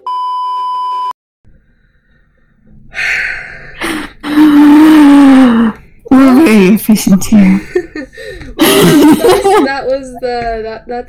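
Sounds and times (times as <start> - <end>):
censor bleep electronic tone: 0.0 - 1.1
breathy snorting noises: 1.5 - 9.1
speech: 6.5 - 11.0.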